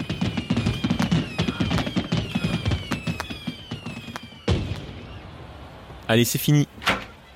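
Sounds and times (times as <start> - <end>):
firework bursts: 0.0 - 5.3
firework whistling streaks: 0.0 - 6.0
speech: 6.1 - 6.7.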